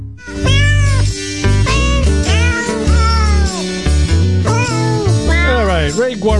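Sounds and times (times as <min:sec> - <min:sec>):
cat meowing: 0:00.2 - 0:03.8, 0:04.4 - 0:05.7
speech: 0:06.1 - 0:06.3.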